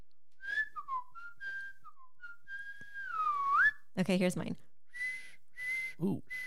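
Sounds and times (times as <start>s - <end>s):
person whistling a short wandering tune softly: 0.4s - 3.9s, 4.9s - 6.4s
speech: 4.0s - 4.7s, 6.0s - 6.4s.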